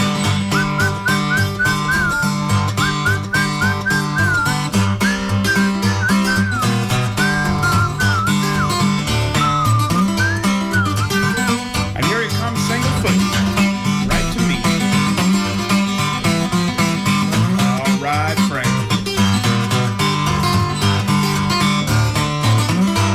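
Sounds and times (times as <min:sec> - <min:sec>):
steady rhythmic instrumental backing: 0:00.0 - 0:23.1
person whistling a wavering tuneful melody to call a horse: 0:00.1 - 0:11.8.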